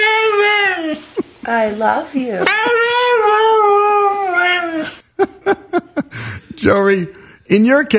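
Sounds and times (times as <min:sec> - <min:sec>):
dog howling: 0:00.0 - 0:01.1, 0:02.4 - 0:05.0
laughter: 0:01.0 - 0:01.5, 0:05.0 - 0:06.6
speech: 0:01.5 - 0:03.0, 0:06.6 - 0:07.9.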